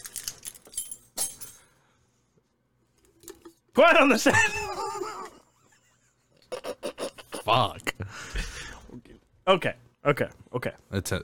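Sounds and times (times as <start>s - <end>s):
keys jangling: 0.0s - 1.7s
speech: 3.8s - 4.8s, 7.6s - 8.5s, 9.5s - 11.2s.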